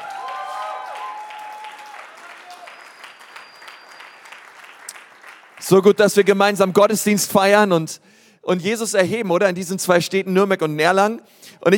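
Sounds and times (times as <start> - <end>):
whistles and cheers from a crowd: 0.0 - 5.1
large crowd clapping: 0.0 - 6.6
speech: 5.6 - 11.7.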